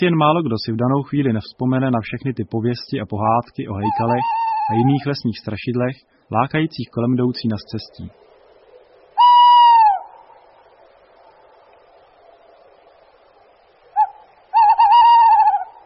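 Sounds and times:
speech: 0.0s - 8.3s
male tawny owl territorial hooting: 3.8s - 5.2s, 8.2s - 10.6s, 13.8s - 15.8s.

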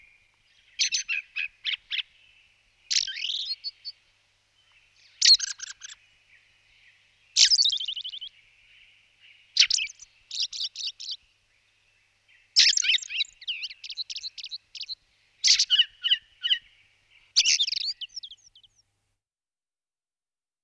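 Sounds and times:
ring ouzel Turdus torquatus singing: 0.0s - 4.0s, 4.6s - 18.8s.

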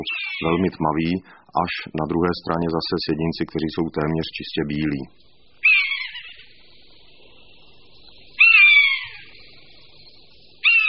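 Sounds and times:
common buzzard mewing calls: 0.0s - 0.7s, 5.6s - 6.6s, 8.4s - 9.4s, 10.6s - 10.8s
speech: 0.0s - 5.3s
quiet hum: 0.0s - 10.8s.

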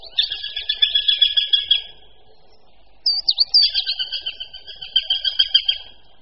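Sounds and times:
female Eurasian sparrowhawk calling to male: 0.0s - 2.0s, 3.0s - 6.0s.

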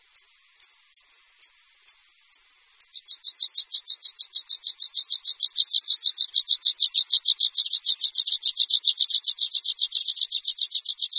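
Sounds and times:
water pipit singing a fast ringing trill: 2.8s - 11.1s.

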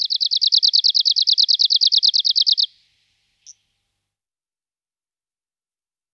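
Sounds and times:
Arctic warbler Phylloscopus borealis song trill: 0.0s - 3.7s.

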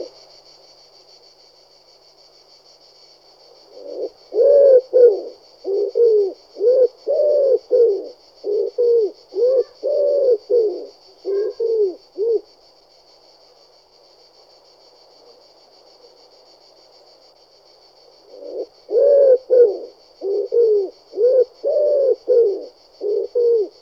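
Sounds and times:
Columba palumbus wood pigeon calling: 3.9s - 12.4s, 18.5s - 23.7s.

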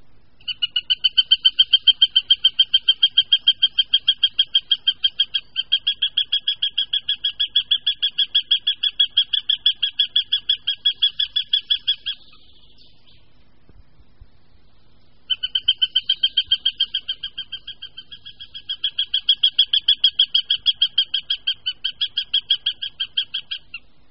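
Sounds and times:
male northern goshawk alarm call near nest: 0.4s - 13.2s, 15.3s - 23.9s.

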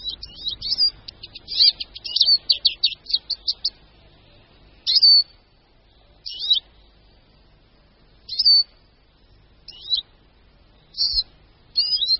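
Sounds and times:
sharp single calls of a small forest songbird: 0.0s - 3.9s, 4.8s - 5.4s, 6.2s - 6.9s, 8.2s - 10.1s, 10.7s - 12.1s
small forest songbird twittering: 0.0s - 7.5s, 8.2s - 12.1s.

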